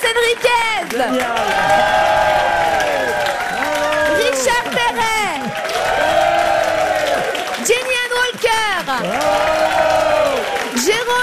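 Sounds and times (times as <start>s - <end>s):
crowd applauding: 0.0s - 11.2s
speech: 0.3s - 1.8s
crowd cheering and whooping: 1.1s - 7.8s, 8.9s - 10.9s.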